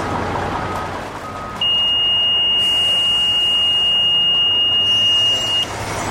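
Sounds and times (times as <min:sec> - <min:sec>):
idling vehicles rumbling outdoors: 0:00.0 - 0:06.0
radiation detector alarm at scrapyard gate: 0:01.6 - 0:05.7.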